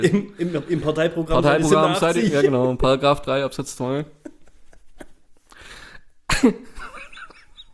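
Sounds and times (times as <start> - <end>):
laughter: 0.0 - 3.0, 4.1 - 5.4
speech: 0.0 - 4.2, 6.4 - 6.7
single sharp cough: 6.3 - 6.8.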